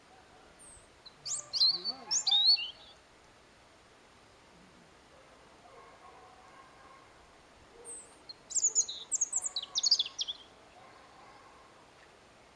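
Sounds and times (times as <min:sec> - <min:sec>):
European robin Erithacus rubecula singing: 0:00.6 - 0:03.0, 0:07.8 - 0:10.5.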